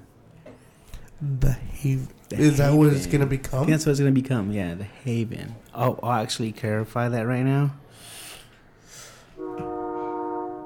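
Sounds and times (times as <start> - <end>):
speech: 1.2 - 8.2
distant train horn: 9.4 - 10.6.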